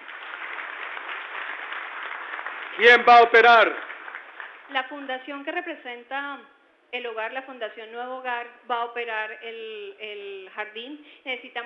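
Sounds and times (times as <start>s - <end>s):
audience applause at a community gathering: 0.0s - 4.8s
speech: 2.8s - 3.8s, 4.7s - 11.6s.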